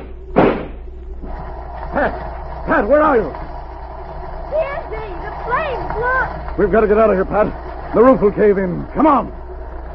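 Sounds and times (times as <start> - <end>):
gunshot blasting a door lock: 0.0 - 0.9
speech: 2.0 - 3.4, 4.6 - 9.4.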